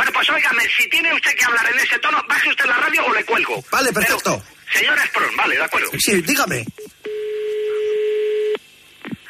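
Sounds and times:
speech: 0.4 - 6.8
steady telephone tone during a call to a landline: 7.0 - 8.6.

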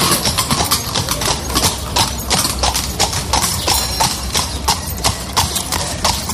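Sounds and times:
horse hooves of a horse-drawn carriage clip-clopping on pavement: 0.0 - 6.3
street noise hum: 0.0 - 6.3.

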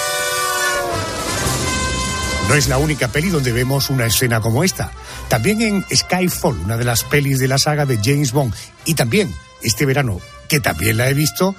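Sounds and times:
moving train sounding its horn in a multi-tone blast: 0.0 - 4.1
low rolling rumble from a moving train: 0.0 - 4.6
speech: 2.5 - 11.5.

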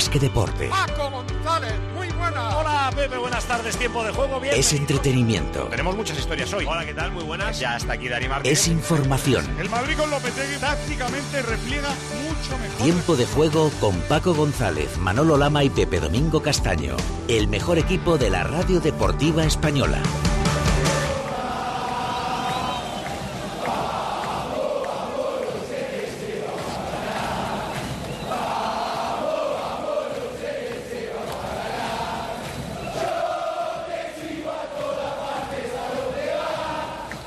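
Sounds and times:
speech: 0.1 - 20.3
huge stadium crowd chanting before football match: 20.4 - 37.2.

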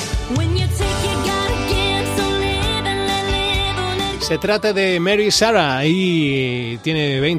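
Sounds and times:
woman singing a song cover: 0.0 - 4.6
full steady instrumental backing: 0.0 - 7.3
speech: 0.3 - 0.6, 4.3 - 7.3.

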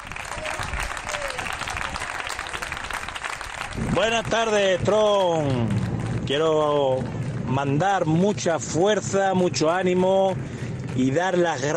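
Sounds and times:
sustained crowd applause: 0.0 - 7.6
speech: 3.8 - 11.7.

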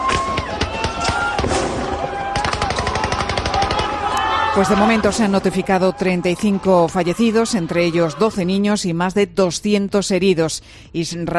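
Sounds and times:
rapid bursts of explosive fire in a dense rattling barrage: 0.6 - 4.1
speech: 4.6 - 11.3.

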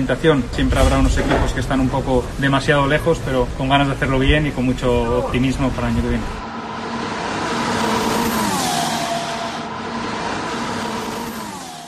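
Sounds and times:
speech: 0.0 - 6.4
high-pitched Formula 1 car engine revving: 6.3 - 11.8.

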